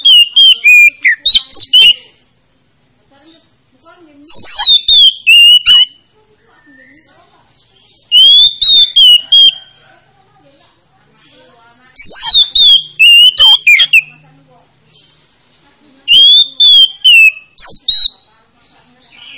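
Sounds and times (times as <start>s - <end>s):
Oriental magpie-robin song of clear whistled phrases: 0.0s - 2.1s, 4.2s - 9.8s, 11.8s - 14.2s, 16.0s - 18.3s, 19.0s - 19.3s.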